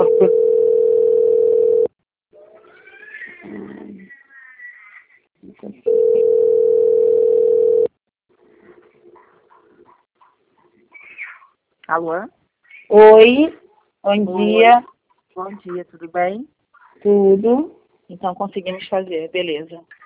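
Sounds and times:
telephone line tone while a call is being transferred: 0.0 - 1.9, 5.9 - 7.9
speech: 12.0 - 20.0.

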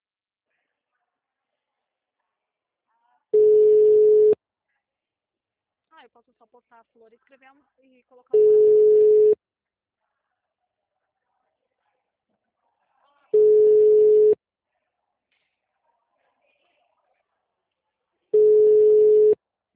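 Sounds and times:
telephone ringback tone of an outgoing call: 3.4 - 4.4, 8.4 - 9.4, 13.4 - 14.4, 18.4 - 19.4
speech: 6.0 - 9.4.

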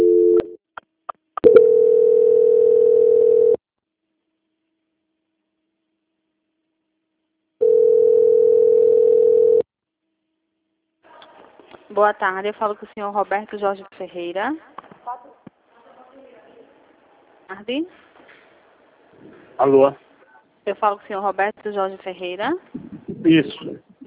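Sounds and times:
telephone line tone during a call transfer: 0.0 - 0.5, 1.4 - 3.6, 7.6 - 9.6
speech: 12.0 - 14.8, 17.5 - 18.1, 19.6 - 20.0, 20.7 - 24.0.

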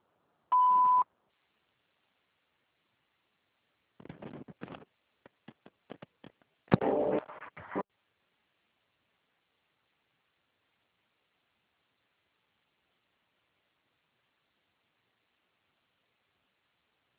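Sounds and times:
voicemail beep: 0.5 - 1.0.

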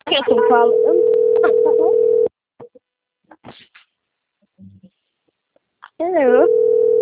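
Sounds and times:
speech: 0.1 - 2.2, 6.0 - 6.6
telephone ringing with an incoming call: 0.3 - 2.3, 6.4 - 6.9.

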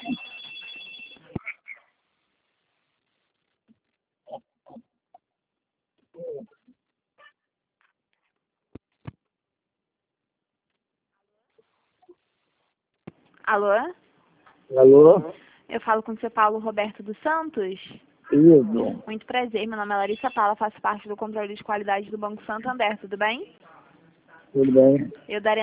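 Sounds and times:
telephone ringing as a bank call is put on hold for transfer: 0.0 - 1.3
speech: 13.5 - 14.0, 14.7 - 23.6, 24.5 - 25.6.

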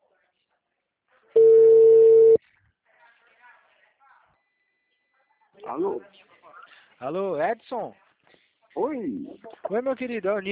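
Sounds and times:
ringback tone on a phone line while a call is placed: 1.4 - 2.4
speech: 5.7 - 6.2, 7.0 - 8.0, 8.8 - 10.5.

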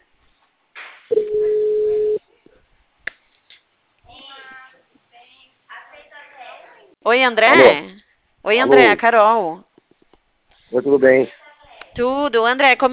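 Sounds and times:
telephone ringback tone: 1.1 - 2.2
speech: 7.1 - 9.7, 10.7 - 11.4, 12.0 - 12.9.

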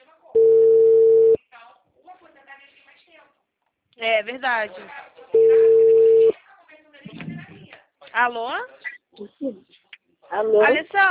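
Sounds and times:
steady telephone tone after a dropped call: 0.4 - 1.4, 5.4 - 6.3
speech: 4.0 - 5.5, 8.2 - 11.0
faint low voice-like sound: 7.0 - 7.8.

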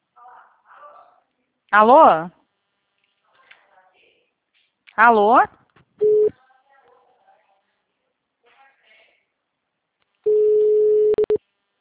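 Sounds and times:
speech: 1.7 - 2.4, 5.0 - 5.6
telephone line tone on an unanswered call: 6.0 - 6.3, 10.3 - 11.4.

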